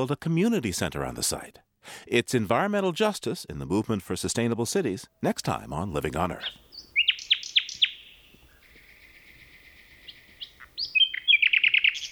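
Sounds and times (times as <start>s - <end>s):
speech: 0.0s - 6.6s
nightingales singing: 5.7s - 12.1s.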